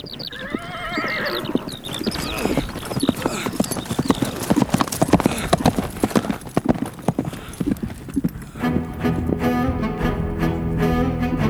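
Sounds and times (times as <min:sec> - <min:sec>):
horse galloping hoofbeats: 0:00.0 - 0:11.4
sustained tonal music: 0:08.6 - 0:11.4.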